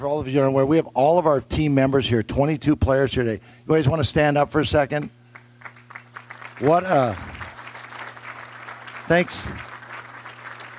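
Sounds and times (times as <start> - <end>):
speech: 0.0 - 5.2, 6.6 - 7.4, 9.1 - 9.7
crowd clapping at a Thanksgiving lunch: 5.3 - 10.7.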